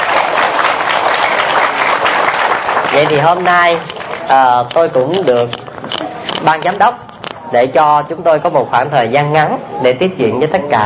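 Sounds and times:
audience applause: 0.0s - 4.4s
speech: 3.0s - 5.6s, 6.4s - 10.8s.

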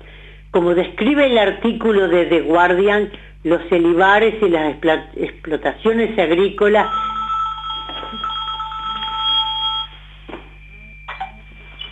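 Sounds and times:
low steady hum: 0.0s - 11.9s
speech: 0.5s - 7.0s
telephone ringing with electronic warbling tone: 6.8s - 10.0s.

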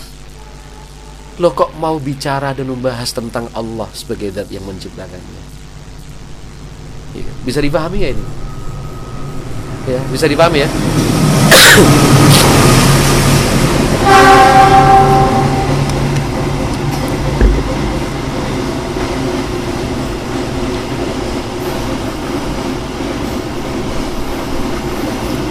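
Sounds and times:
speech: 1.4s - 5.5s, 7.1s - 8.5s, 9.8s - 12.5s
long freight train rolling past with rattling wagons: 8.0s - 25.4s.

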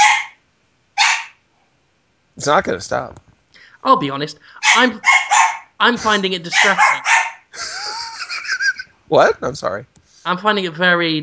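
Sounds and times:
dog barking: 0.0s - 0.4s, 1.0s - 1.4s, 4.6s - 5.8s, 6.5s - 7.5s
speech: 2.4s - 5.2s, 5.8s - 7.8s, 9.1s - 11.2s
laughter: 7.5s - 8.9s.

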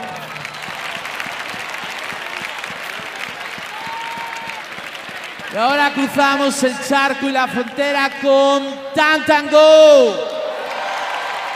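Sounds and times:
audience applauding a band at a large anniversary pop concert: 0.0s - 7.8s, 10.6s - 11.5s
speech: 5.5s - 10.3s.

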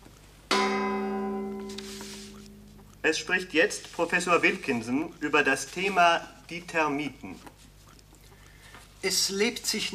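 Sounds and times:
radio time-signal gong stroke: 0.5s - 2.8s
speech: 3.0s - 7.6s, 9.0s - 9.9s.

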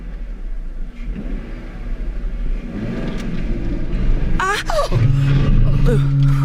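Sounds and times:
car engine revving as the car drives off: 0.0s - 6.4s.

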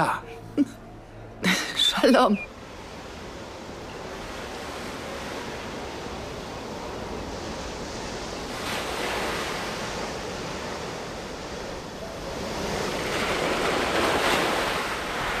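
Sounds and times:
speech: 0.0s - 0.7s, 2.0s - 2.5s
sea waves surging and washing: 0.0s - 15.3s.

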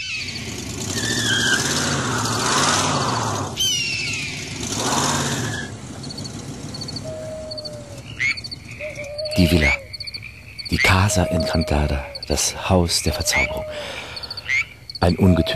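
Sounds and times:
car engine while driving: 0.0s - 12.4s
high squeals: 0.0s - 15.5s
speech: 9.4s - 9.8s, 10.7s - 14.0s, 15.0s - 15.5s.

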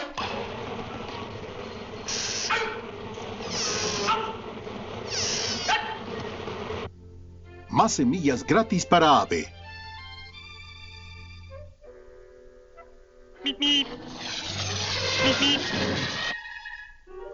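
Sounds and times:
angry cartoon bee swarm buzzing: 0.1s - 6.9s, 13.4s - 16.4s
speech: 7.8s - 9.6s.

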